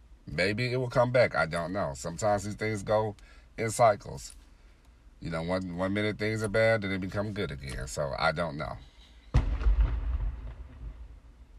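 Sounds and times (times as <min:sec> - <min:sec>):
speech: 0:00.4 - 0:04.4, 0:05.2 - 0:08.9
firework set off after the Fourth of July booming: 0:09.3 - 0:11.2
low rolling firework rumble: 0:09.4 - 0:11.5.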